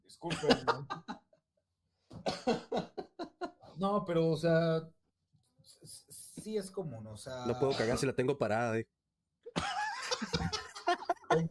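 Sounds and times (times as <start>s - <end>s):
speech: 0.2s - 1.1s, 3.8s - 5.0s, 6.4s - 9.0s
laughter: 0.3s - 1.4s, 2.2s - 3.7s, 9.5s - 11.5s
person coughing: 2.2s - 2.8s, 7.6s - 8.0s.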